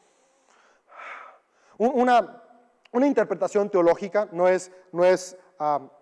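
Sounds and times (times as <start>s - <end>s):
single soft airy breath: 0.0s - 1.8s
speech: 1.8s - 5.9s.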